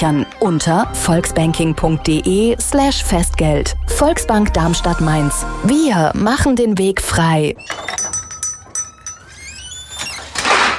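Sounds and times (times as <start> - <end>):
speech: 0.0 - 7.9
metal utensils clinking and rattling inside a drawer: 7.6 - 10.7
kitchen drawer sliding and scraping: 9.9 - 10.7.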